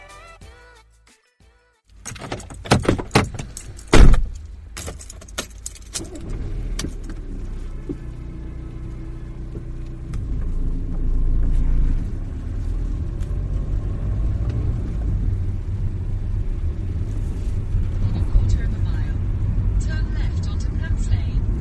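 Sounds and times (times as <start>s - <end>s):
car engine starting and rumbling while driving toward West Brom near Birmingham: 1.9s - 21.5s
road noise: 1.9s - 21.5s
keys jangling and clattering: 2.0s - 6.2s.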